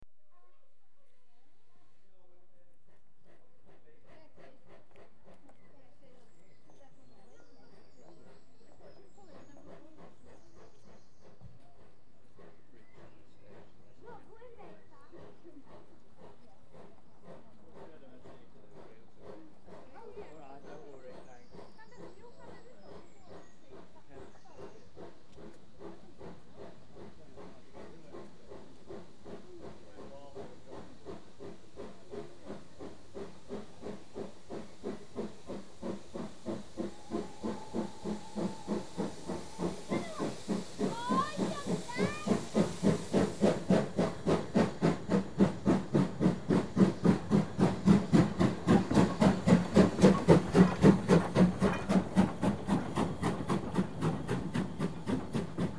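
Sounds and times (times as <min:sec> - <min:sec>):
train arriving: 0:24.9 - 0:55.7
people disembarking from a train: 0:46.4 - 0:55.7.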